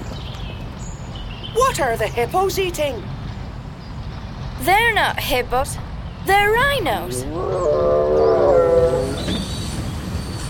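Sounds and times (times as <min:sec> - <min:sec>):
steady low rumble of train wheels: 0:00.0 - 0:10.4
speech: 0:01.6 - 0:03.2, 0:04.6 - 0:09.3
train brakes squealing as the train grinds to a halt: 0:08.2 - 0:10.4.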